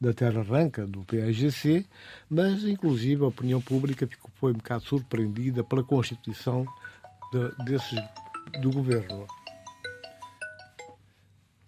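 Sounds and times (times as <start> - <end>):
speech: 0.0 - 9.4
phone ringtone electronic melody: 5.4 - 11.0.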